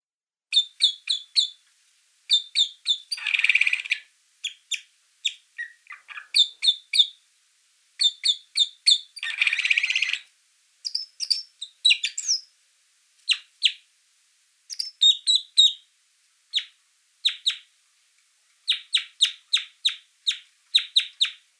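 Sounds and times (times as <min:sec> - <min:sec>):
Loxia curvirostra calling: 0:00.5 - 0:01.6, 0:02.3 - 0:07.2, 0:08.0 - 0:12.5, 0:14.7 - 0:15.8, 0:16.5 - 0:17.7, 0:18.7 - 0:21.4.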